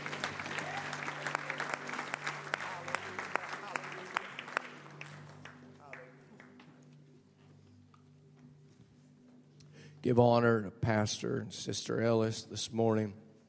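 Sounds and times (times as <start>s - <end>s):
room full of people applauding with hand claps: 0.0s - 6.6s
speech: 10.0s - 13.2s.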